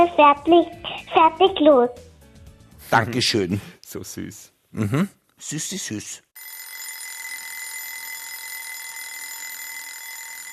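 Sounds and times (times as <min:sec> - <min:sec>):
speech: 0:00.0 - 0:02.1, 0:02.8 - 0:06.2
alarm clock ringing with a high metallic trill: 0:06.4 - 0:10.5.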